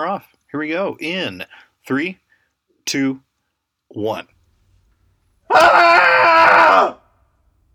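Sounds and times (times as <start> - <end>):
speech: 0.0 - 2.2, 2.9 - 3.3, 3.9 - 4.3, 5.5 - 7.0
group of people letting out a cathartic scream: 5.5 - 7.0.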